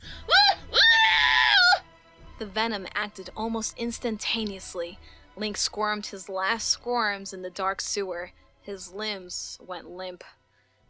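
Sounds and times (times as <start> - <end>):
person screaming in agony: 0.2 - 1.8
speech: 2.4 - 10.4.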